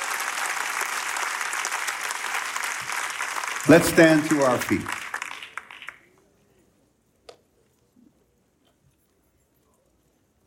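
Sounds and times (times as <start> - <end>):
large audience applauding: 0.0 - 6.2
speech: 3.6 - 5.0.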